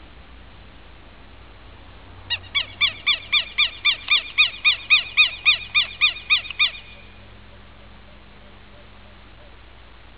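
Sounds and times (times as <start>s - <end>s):
faint low rumble: 0.0s - 10.1s
Southern lapwing loud grating call series: 2.3s - 9.6s.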